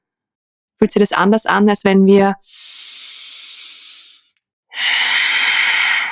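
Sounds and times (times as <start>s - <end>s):
speech: 0.8s - 2.8s
deep forceful breath in: 2.4s - 6.0s
strong noisy exhale: 2.5s - 6.0s.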